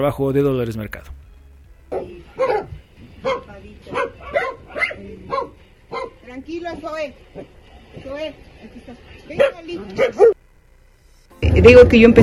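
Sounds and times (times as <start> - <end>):
speech: 0.0 - 1.2, 6.4 - 10.4, 11.6 - 12.2
large mixed-breed dog barking: 1.9 - 6.2, 9.4 - 10.4.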